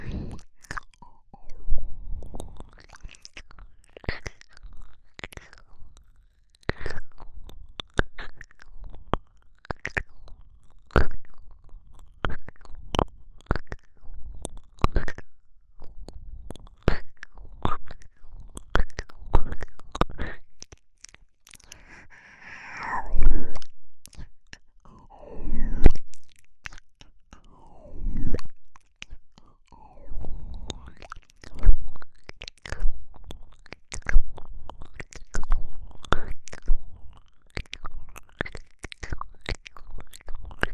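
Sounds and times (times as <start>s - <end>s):
rapid mouth clicks and smacks: 0.0s - 40.7s
wet licking and sucking on an ice pop: 0.0s - 40.7s
soft breathy exhalations: 21.6s - 23.6s.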